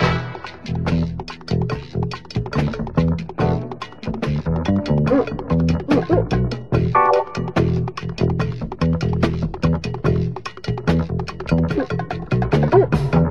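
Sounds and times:
drum loop: 0:00.0 - 0:13.3
guitar loop: 0:00.0 - 0:13.3.

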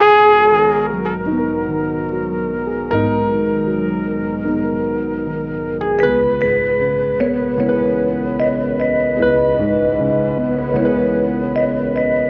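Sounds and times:
horn: 0:00.0 - 0:12.2
piano: 0:00.0 - 0:12.2
vibraphone: 0:06.0 - 0:12.2.

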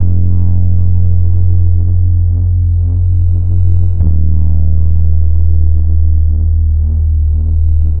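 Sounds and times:
sad bass loop: 0:00.0 - 0:07.9.

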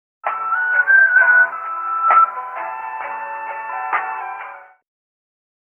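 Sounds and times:
guitar loop: 0:00.3 - 0:04.7
person whistling: 0:00.3 - 0:04.7.

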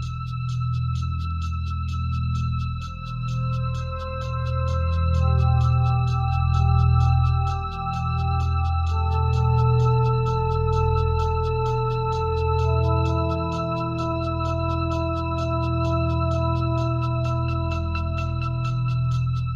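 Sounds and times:
clean electronic sweep loop: 0:00.0 - 0:19.5.

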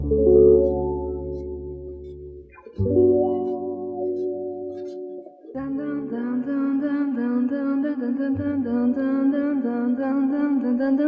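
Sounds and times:
guitar loop: 0:00.0 - 0:11.0
person singing: 0:03.0 - 0:11.0.

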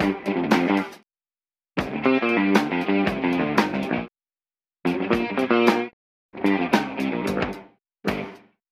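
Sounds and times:
funky drum loops: 0:00.0 - 0:01.0, 0:01.8 - 0:04.1, 0:04.9 - 0:08.4
guitar: 0:00.0 - 0:01.0, 0:01.8 - 0:04.1, 0:04.8 - 0:08.6.

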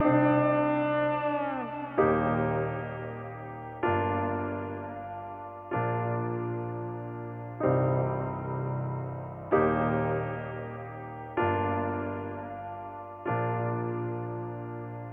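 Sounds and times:
sad piano loop: 0:00.0 - 0:15.1.

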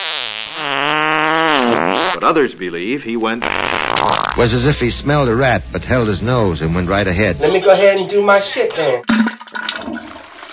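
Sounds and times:
fart sound effect: 0:00.0 - 0:02.5, 0:03.2 - 0:04.4
speech: 0:01.7 - 0:10.1.

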